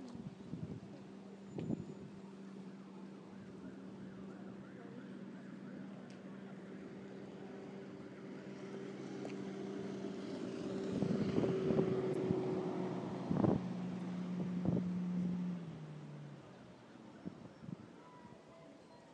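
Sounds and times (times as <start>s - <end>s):
wind noise: 0.1s - 0.9s, 10.9s - 12.6s, 13.2s - 13.8s, 14.4s - 14.9s
fast motorboat engine droning across open water: 1.1s - 16.6s.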